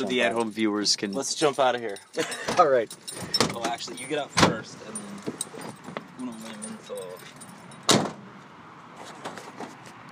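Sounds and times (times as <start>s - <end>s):
speech: 0.0s - 5.5s
soft outdoor ambience: 0.0s - 10.1s
keys jingling while locking a car: 0.4s - 7.9s.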